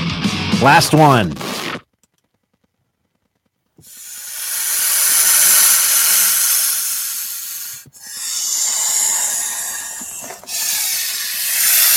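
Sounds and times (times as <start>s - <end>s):
speech: 0.6s - 1.5s
hissing smoke as a person takes a hit: 3.8s - 11.9s.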